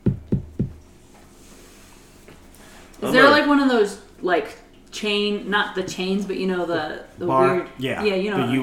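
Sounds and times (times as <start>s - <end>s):
firm knocking on a wooden door: 0.0s - 0.8s
speech: 3.0s - 8.6s.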